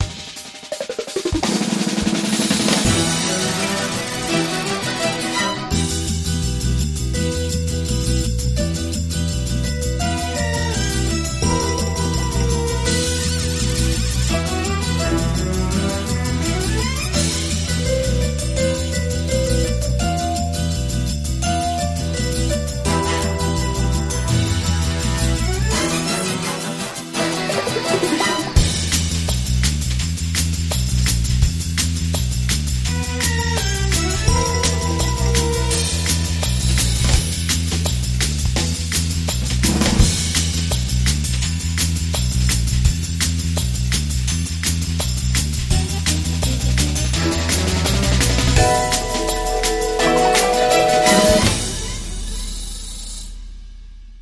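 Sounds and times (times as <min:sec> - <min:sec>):
underscore music without drums: 0:00.0 - 0:54.1.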